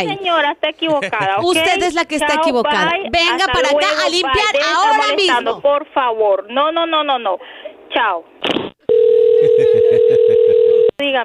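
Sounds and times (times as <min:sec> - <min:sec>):
speech: 0:00.0 - 0:08.6, 0:11.0 - 0:11.2
telephone dial tone after hang-up: 0:08.9 - 0:10.9
laughter: 0:09.4 - 0:10.4.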